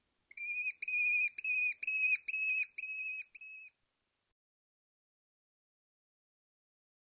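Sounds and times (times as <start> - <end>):
American Kestrel calling: 0.3 - 3.7.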